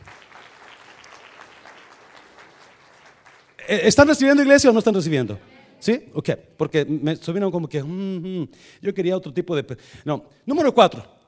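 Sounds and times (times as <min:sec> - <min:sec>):
church audience applauding: 0:00.0 - 0:04.1
speech: 0:03.6 - 0:11.2.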